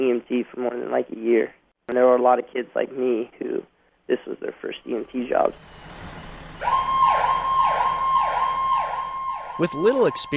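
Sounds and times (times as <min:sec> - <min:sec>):
speech: 0:00.0 - 0:06.8, 0:09.6 - 0:10.3
ambulance siren wailing: 0:05.4 - 0:10.3.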